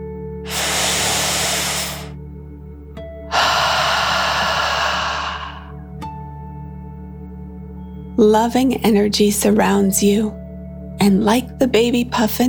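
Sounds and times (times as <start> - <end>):
deep breath in and out during a children's relaxation exercise: 0.5 - 2.2, 3.3 - 5.8
speech: 8.2 - 10.4, 11.0 - 12.4.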